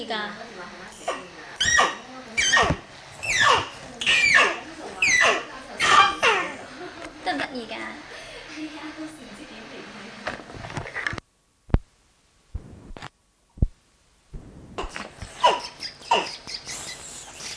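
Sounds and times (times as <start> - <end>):
speech: 0.0 - 1.2
high playful voice imitating a mouse squeaking: 1.0 - 6.5, 14.8 - 17.5.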